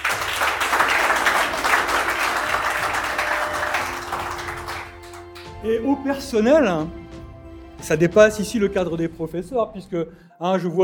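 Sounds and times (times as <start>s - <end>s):
audience applause for teachers at an end-of-year gathering: 0.0s - 5.6s
speech: 5.6s - 7.0s, 7.8s - 10.8s.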